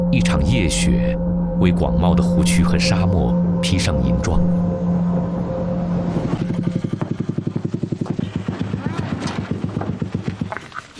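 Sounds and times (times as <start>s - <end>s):
speech: 0.1s - 5.0s
three-wheeled motorcycle engine chugging: 6.3s - 10.7s.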